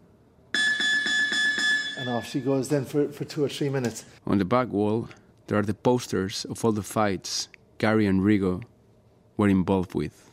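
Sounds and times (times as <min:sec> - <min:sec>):
gym round timer electronic beep: 0:00.5 - 0:02.7
speech: 0:02.0 - 0:08.7, 0:09.4 - 0:10.3.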